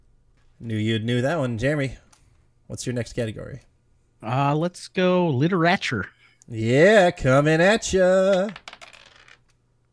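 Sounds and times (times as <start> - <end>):
faint steady hum: 0.0 - 9.9
speech: 0.6 - 2.0, 2.7 - 8.6
dice rolling on a table: 8.1 - 9.6.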